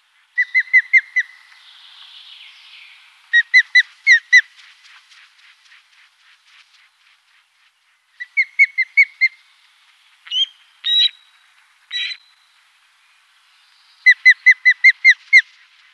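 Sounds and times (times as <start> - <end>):
osprey calling: 0.3 - 1.6, 3.2 - 4.6, 8.2 - 9.6, 10.2 - 12.4, 14.0 - 15.6.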